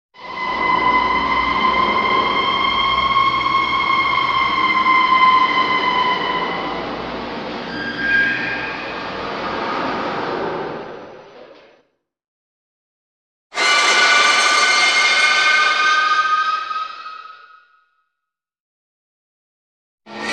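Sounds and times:
high pitched eerie metallic screech: 0:00.2 - 0:11.3, 0:13.6 - 0:17.8, 0:20.1 - 0:20.3.

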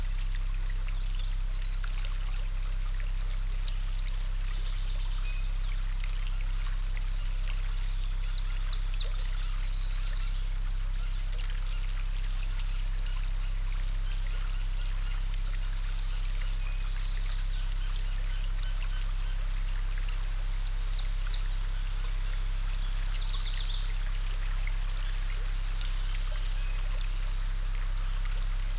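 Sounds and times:
crickets singing by a pond: 0:00.0 - 0:28.7
low droning hum: 0:22.4 - 0:25.0.

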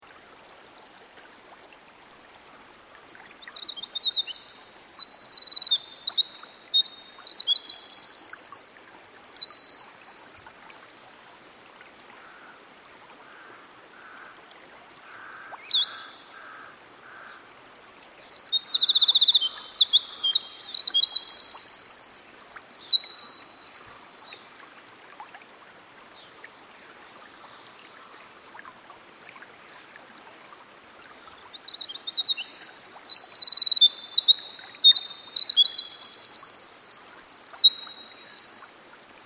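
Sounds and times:
winter wren singing: 0:03.7 - 0:10.4, 0:18.3 - 0:23.9, 0:32.0 - 0:38.6.

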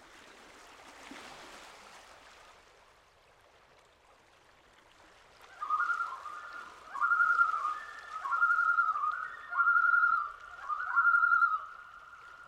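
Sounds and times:
Common Loon tremolo call at a lake: 0:05.6 - 0:12.4.

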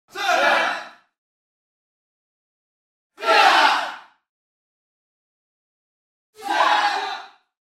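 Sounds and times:
martial arts class yelling: 0:00.1 - 0:00.9, 0:03.2 - 0:04.0, 0:06.4 - 0:07.4.

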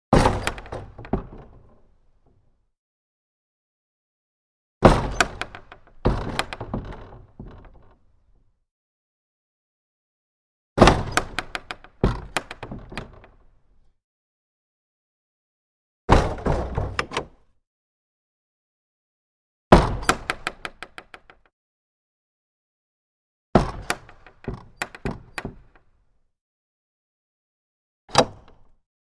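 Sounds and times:
large wooden main gate: 0:00.1 - 0:02.6, 0:04.8 - 0:08.6, 0:10.8 - 0:13.9, 0:16.1 - 0:17.6, 0:19.7 - 0:21.5, 0:23.6 - 0:26.1, 0:28.1 - 0:28.8.

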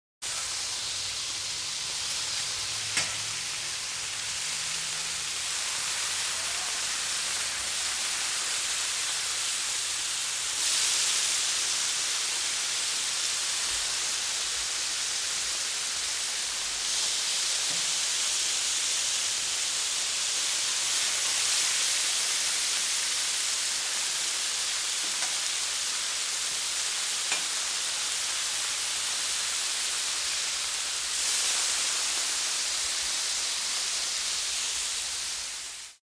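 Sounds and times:
hamburgers frying on a grill: 0:00.2 - 0:36.0
spatula hitting a grill: 0:02.9 - 0:03.3, 0:25.0 - 0:25.4, 0:27.3 - 0:27.6.

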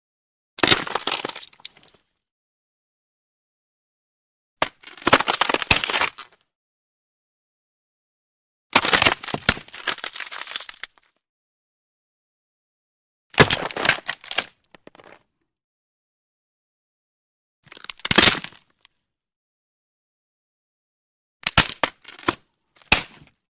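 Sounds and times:
bone cracking and splintering: 0:00.6 - 0:02.0, 0:04.6 - 0:06.4, 0:08.8 - 0:11.1, 0:13.4 - 0:15.2, 0:17.7 - 0:18.8, 0:21.4 - 0:23.4.

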